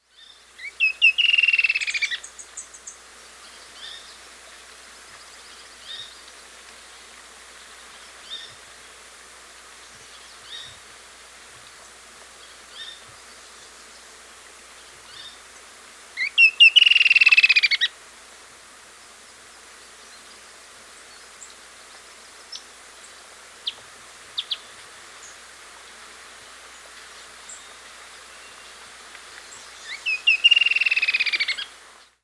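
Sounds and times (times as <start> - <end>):
Creamy-bellied Antwren Herpsilochmus motacilloides calling: 0.6 - 2.3, 16.2 - 17.9, 29.8 - 31.7.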